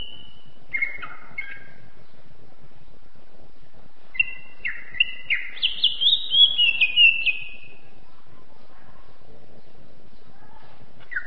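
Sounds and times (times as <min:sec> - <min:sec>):
champion Greater green leafbird singing: 0:00.0 - 0:01.9, 0:04.1 - 0:07.8, 0:11.1 - 0:11.2.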